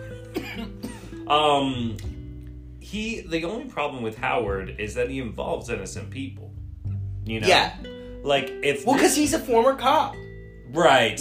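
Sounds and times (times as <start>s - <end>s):
person coughing: 0.4s - 1.2s
speech: 0.6s - 2.1s, 2.9s - 6.4s, 7.3s - 11.2s.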